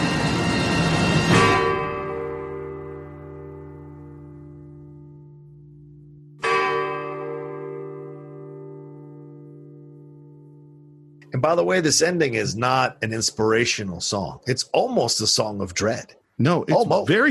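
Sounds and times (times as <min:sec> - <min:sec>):
Liberty Bell struck, deep resonant ringing: 0:00.0 - 0:04.7, 0:06.4 - 0:09.7
speech: 0:11.4 - 0:17.3.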